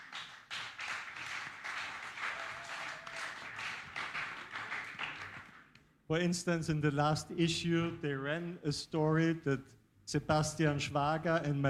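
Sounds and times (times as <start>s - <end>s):
crowd applauding with many hands clapping: 0.0s - 5.7s
speech: 6.1s - 11.6s.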